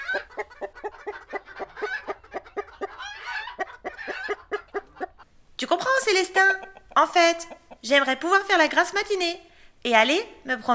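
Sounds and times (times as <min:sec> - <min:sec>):
rooster in a henhouse: 0:00.0 - 0:05.2
chickens clucking in a henhouse: 0:00.0 - 0:09.0
speech: 0:06.1 - 0:10.7.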